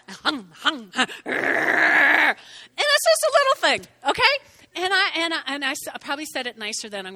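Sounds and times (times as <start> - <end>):
speech: 0.3 - 1.9, 3.7 - 7.1
voice imitating a small dog barking, whining and growling: 1.3 - 2.4.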